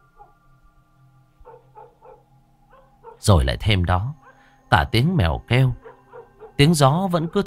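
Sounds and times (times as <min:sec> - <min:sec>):
dogs barking in a village at night: 0:00.1 - 0:00.4, 0:01.4 - 0:03.3, 0:04.1 - 0:04.5, 0:05.8 - 0:07.4
speech: 0:03.2 - 0:05.8, 0:06.6 - 0:07.4.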